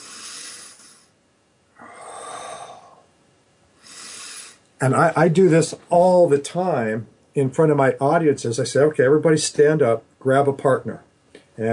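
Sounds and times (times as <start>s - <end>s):
person taking deep breaths into the abdomen: 0.0s - 1.2s, 1.8s - 3.1s, 3.8s - 4.7s
speech: 4.8s - 11.7s.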